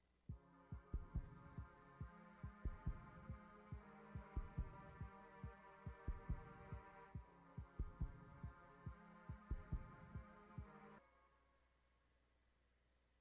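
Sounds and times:
throbbing heartbeat-like pulse in a pop song intro: 0:00.3 - 0:10.8.

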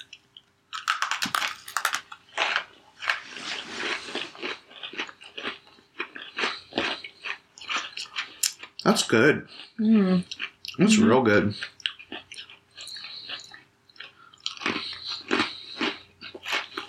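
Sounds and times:
biting and chewing Oreo cookies: 0:00.0 - 0:16.8
speech: 0:08.8 - 0:11.8.

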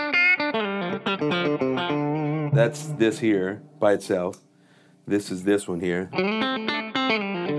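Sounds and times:
coil-tapped humbucker electric guitar playing slightly distorted notes: 0:00.0 - 0:04.3, 0:06.1 - 0:07.5
speech: 0:01.2 - 0:02.0, 0:02.6 - 0:04.4, 0:05.0 - 0:07.4.

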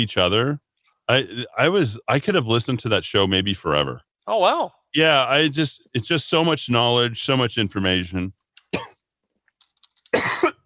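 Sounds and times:
speech: 0:00.0 - 0:09.0
coughing and throat clearing from a throat tickle: 0:08.6 - 0:09.0, 0:10.1 - 0:10.6.

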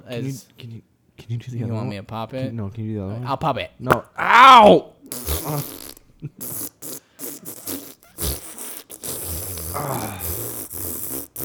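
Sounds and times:
speech: 0:00.1 - 0:06.7, 0:09.8 - 0:10.3
farting: 0:03.9 - 0:11.4.

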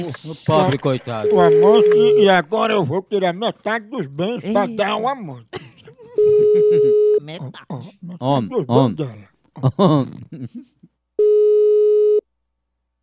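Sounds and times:
laughter: 0:00.0 - 0:02.2, 0:05.5 - 0:08.9, 0:09.5 - 0:10.9
speech: 0:00.0 - 0:05.6, 0:06.2 - 0:10.8
telephone line tone on a call: 0:01.2 - 0:02.4, 0:06.2 - 0:07.2, 0:11.2 - 0:12.2.

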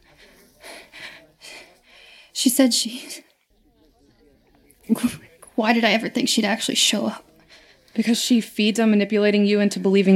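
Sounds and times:
quick shallow breathing catching breath: 0:00.0 - 0:02.4, 0:07.3 - 0:08.0
speech: 0:02.4 - 0:03.3, 0:05.6 - 0:07.3, 0:08.0 - 0:10.1.

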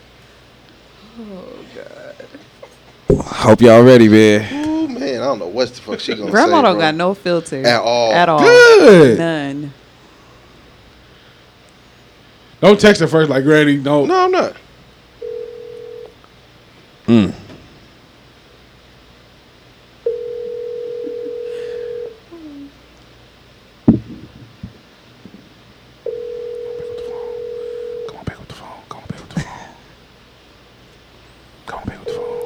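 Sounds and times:
speech: 0:01.2 - 0:04.6, 0:05.3 - 0:09.8, 0:12.6 - 0:14.6, 0:17.1 - 0:17.4
outgoing phone call ringback tone: 0:15.2 - 0:16.2, 0:20.0 - 0:22.2, 0:26.0 - 0:28.2, 0:32.0 - 0:32.4.

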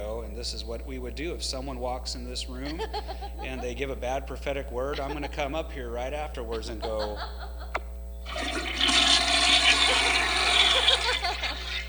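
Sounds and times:
speech: 0:00.4 - 0:07.6
laughter: 0:02.5 - 0:04.1, 0:04.7 - 0:07.8, 0:09.6 - 0:11.8
toilet flushing with swirling water: 0:08.3 - 0:11.8.

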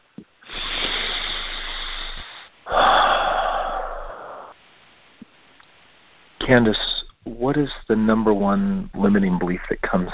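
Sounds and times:
deep breath: 0:00.4 - 0:04.6
speech: 0:06.5 - 0:10.1.

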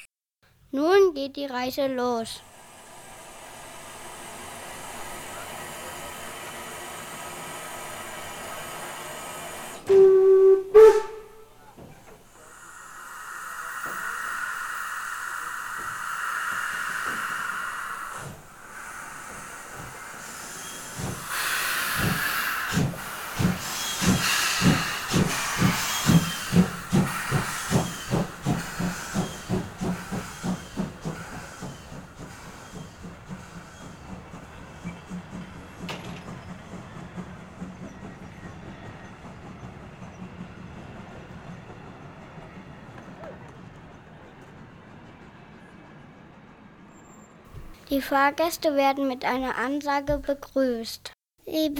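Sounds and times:
speech: 0:00.7 - 0:02.5, 0:48.0 - 0:51.7
steam locomotive hissing as train departs: 0:02.0 - 0:44.6
train conductor's departure whistle blowing: 0:09.9 - 0:11.5.

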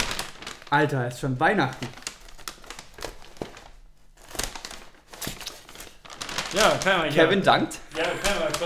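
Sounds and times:
bag of wrestling DVDs crinkling and rustling as it is opened: 0:00.0 - 0:08.6
speech: 0:00.7 - 0:02.0, 0:06.5 - 0:08.6
laughter: 0:07.6 - 0:08.6.

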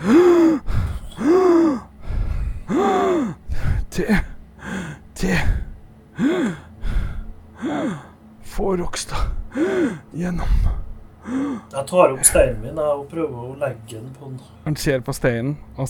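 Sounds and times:
speech: 0:00.0 - 0:00.3, 0:04.0 - 0:04.3, 0:08.7 - 0:15.8
person imitating a dying knight's gasping: 0:00.0 - 0:08.2, 0:09.1 - 0:11.8.

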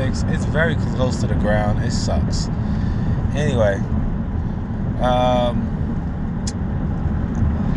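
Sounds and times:
road noise inside a moving car: 0:00.0 - 0:07.7
speech: 0:00.1 - 0:02.8, 0:03.4 - 0:04.0, 0:05.0 - 0:05.7
sharp click: 0:06.4 - 0:06.6.

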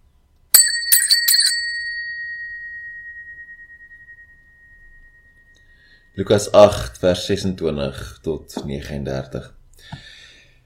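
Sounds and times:
small bell being rung: 0:00.5 - 0:06.2
speech: 0:06.2 - 0:10.0.

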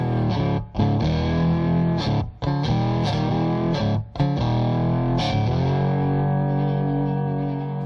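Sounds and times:
Rickenbacker frying pan electric lap steel guitar playing gliding notes: 0:00.0 - 0:07.8.

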